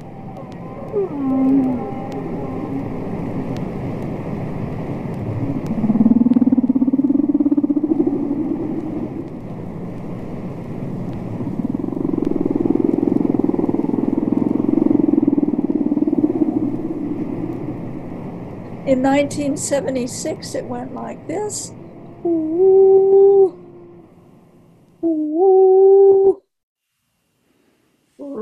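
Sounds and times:
long low whale calls: 0.0 - 3.9, 5.3 - 9.3, 11.3 - 17.8, 21.7 - 24.2, 25.0 - 26.4
steady underwater hum: 0.0 - 26.4
speech: 1.0 - 1.6, 18.9 - 22.8.

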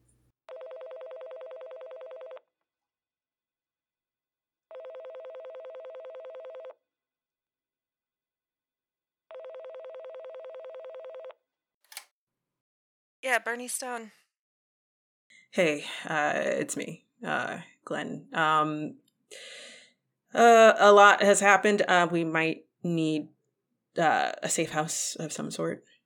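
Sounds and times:
telephone buzzing ring: 0.5 - 2.4, 4.7 - 6.8, 9.3 - 11.4
speech: 13.3 - 14.2, 15.5 - 19.6, 20.3 - 23.3, 24.0 - 25.9.

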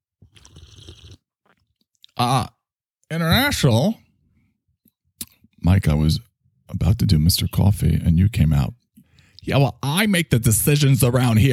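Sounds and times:
person sipping hot peppermint tea: 0.2 - 1.8
speech: 2.2 - 4.0, 5.6 - 8.8, 9.4 - 11.5.

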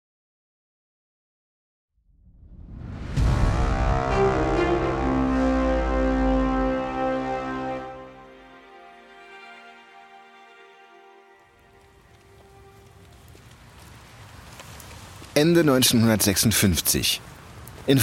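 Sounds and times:
tonal sound: 2.8 - 12.8
rain pattering on an umbrella: 11.2 - 18.0
speech: 15.4 - 18.0.

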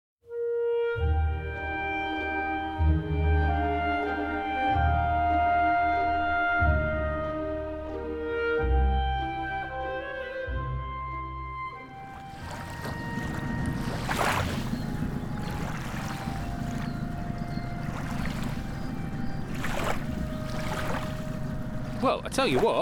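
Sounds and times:
boat engine chugging along a canal on a chilly day: 0.9 - 22.8
water swishing: 11.9 - 22.8
speech: 22.2 - 22.8.

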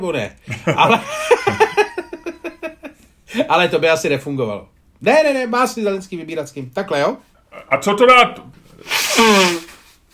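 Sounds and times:
speech: 0.0 - 1.8, 3.3 - 9.5
laughter: 0.5 - 2.9
loud nose blow: 8.7 - 10.0.

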